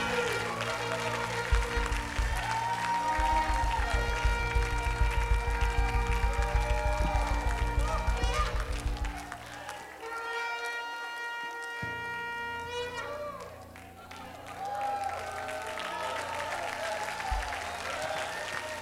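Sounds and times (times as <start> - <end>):
sustained musical tones: 0.0 - 10.0
church congregation applauding: 0.0 - 18.8.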